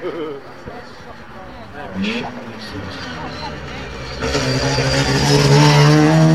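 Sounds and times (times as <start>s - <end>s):
high-revving race car with big-ported rotary engine driving past at speed: 1.8s - 6.3s.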